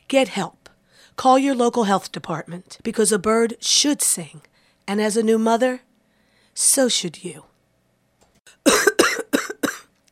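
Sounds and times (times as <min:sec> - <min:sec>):
speech: 0:00.1 - 0:00.6, 0:01.2 - 0:05.9, 0:06.6 - 0:07.5
heavy smoker coughing harshly: 0:08.6 - 0:09.9.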